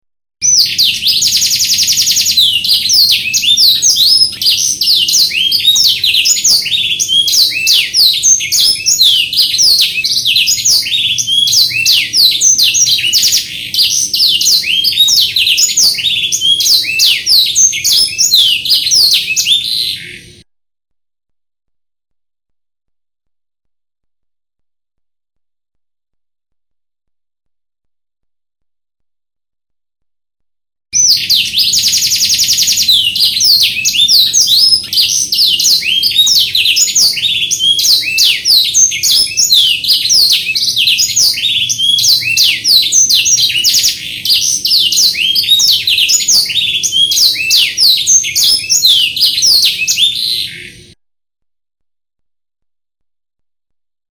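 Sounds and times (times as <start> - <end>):
canary singing: 0.4 - 20.4, 31.0 - 51.0.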